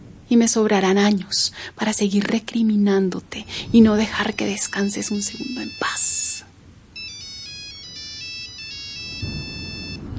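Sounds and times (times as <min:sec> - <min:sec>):
low rumble: 0:00.0 - 0:05.6
speech: 0:00.3 - 0:06.2
cell phone ringtone: 0:03.4 - 0:06.4, 0:07.0 - 0:10.1.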